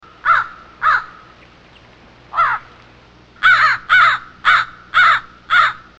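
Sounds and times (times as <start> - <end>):
American crow nocturnal flight call caws: 0.0 - 1.3, 2.3 - 2.7, 3.4 - 5.9.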